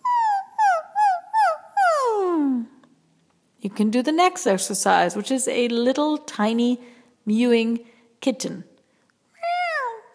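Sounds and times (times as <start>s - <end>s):
human voice imitating a puppy's whimper: 0.0s - 2.8s, 9.4s - 10.1s
speech: 3.6s - 8.7s.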